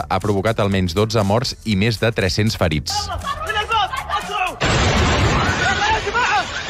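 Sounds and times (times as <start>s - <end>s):
speech: 0.0s - 3.5s
powerful explosion at an airport: 4.6s - 6.6s.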